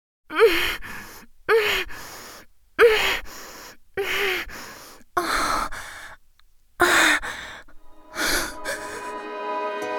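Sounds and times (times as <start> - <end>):
woman moaning: 0.3 - 2.1, 2.8 - 6.2, 6.8 - 9.2.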